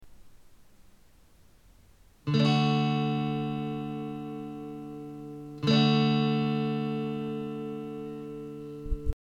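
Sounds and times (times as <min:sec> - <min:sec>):
guitar playing in D major: 0:02.2 - 0:09.1.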